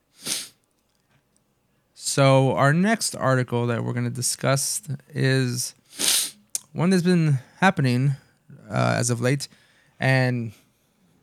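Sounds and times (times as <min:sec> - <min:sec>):
human sneeze: 0:00.2 - 0:00.5, 0:05.9 - 0:06.4
speech: 0:02.1 - 0:05.8, 0:06.8 - 0:10.6.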